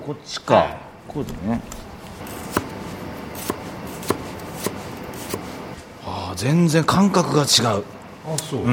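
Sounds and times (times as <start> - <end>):
speech: 0.0 - 2.4, 6.4 - 8.7
santoku knife chopping green onions on a cutting board: 2.2 - 5.6.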